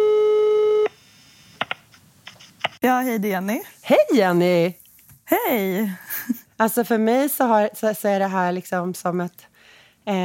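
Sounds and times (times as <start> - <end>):
telephone call tone: 0.0 - 1.0
speech: 2.8 - 10.2.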